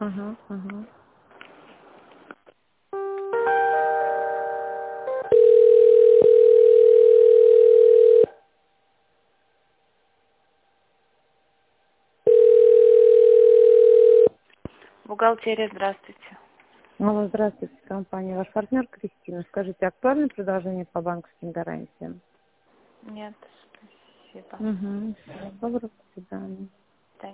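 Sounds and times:
speech: 0.0s - 1.0s, 15.2s - 16.3s, 17.0s - 22.3s, 23.0s - 23.7s, 24.4s - 27.3s
faint hum: 0.0s - 27.3s
telephone line tones while a call is being transferred: 5.2s - 8.4s, 12.3s - 14.3s.

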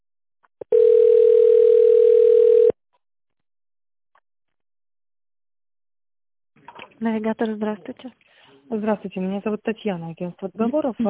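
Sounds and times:
telephone line tone while holding for a secretary: 0.6s - 2.8s
speech: 7.0s - 11.0s.

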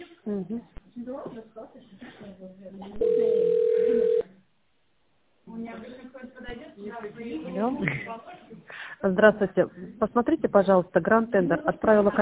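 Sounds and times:
speech: 0.3s - 4.3s, 5.6s - 12.2s
telephone ringing tone while an office reception transfers a call: 3.0s - 4.3s.

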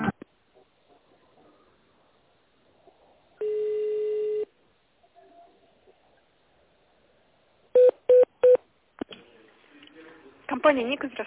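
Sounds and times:
faint noise: 0.1s - 11.2s
long steady telephone tone on a company phone line: 3.4s - 4.5s, 7.7s - 8.6s
speech: 10.7s - 11.2s.

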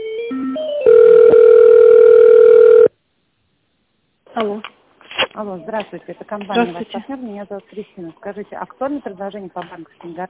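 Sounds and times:
telephone line tones while dialing an extension: 0.2s - 2.9s
speech: 4.4s - 4.8s, 5.4s - 10.2s.

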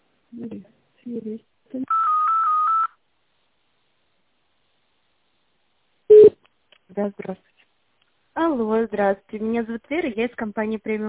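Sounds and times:
speech: 0.3s - 2.0s, 7.0s - 7.5s, 8.4s - 11.0s
brief telephone tone: 1.9s - 3.0s, 6.1s - 6.4s.

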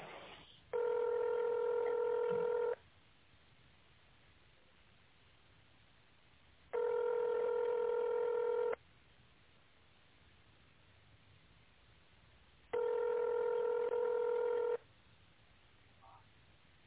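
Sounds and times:
telephone touch-tone dialing of an extension on a phone menu: 0.8s - 2.8s, 6.8s - 8.8s, 12.8s - 14.8s.

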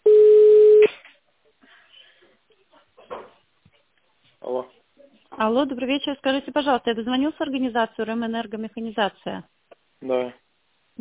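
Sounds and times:
telephone line tone as a call connects: 0.0s - 0.9s
speech: 5.4s - 10.4s.

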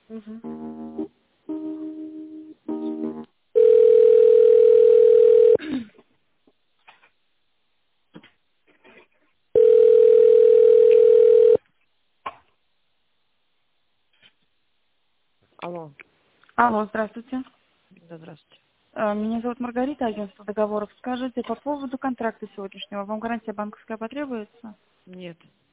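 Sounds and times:
speech: 0.1s - 1.0s, 16.6s - 25.6s
telephone beeping tones while a call is transferred: 3.6s - 5.6s, 9.6s - 11.6s.

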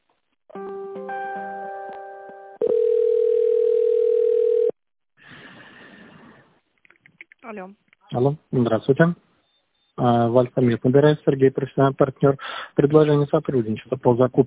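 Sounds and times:
telephone dial tone while a call is placed: 2.6s - 4.8s
speech: 7.5s - 9.3s, 10.0s - 14.4s.

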